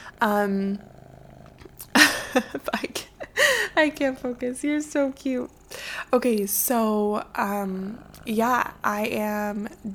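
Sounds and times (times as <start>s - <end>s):
cat purring softly: 0.0s - 9.9s
speech: 0.2s - 1.0s, 1.8s - 9.9s.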